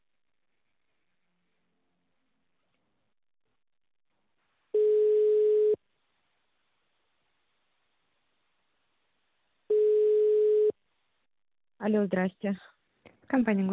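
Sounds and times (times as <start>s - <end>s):
telephone ringback tone while a call to a property buyer connects: 4.8s - 5.8s, 9.7s - 10.8s
speech: 11.8s - 13.7s.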